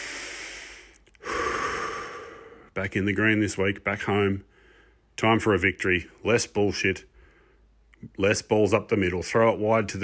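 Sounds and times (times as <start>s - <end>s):
person breathing in through the nose and out through the mouth: 0.0s - 2.8s, 4.4s - 5.1s, 7.1s - 7.8s
speech: 2.8s - 4.5s, 5.2s - 7.1s, 8.0s - 10.0s.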